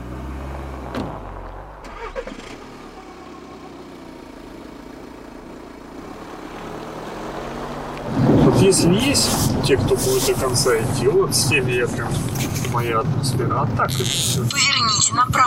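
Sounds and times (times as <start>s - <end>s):
car engine rumbling on a village road after dark: 0.0s - 15.4s
speech: 8.6s - 15.4s.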